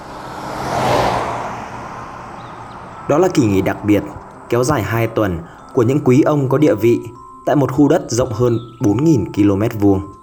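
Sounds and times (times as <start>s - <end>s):
luxury car engine hum and tire hiss at a rural resort in Northern California: 0.0s - 5.8s
speech: 3.1s - 10.2s.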